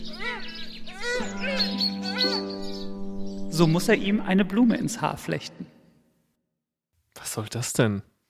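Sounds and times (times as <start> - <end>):
bright rising-and-falling bird chirps: 0.0 - 4.1
speech: 3.6 - 5.8, 7.4 - 8.1.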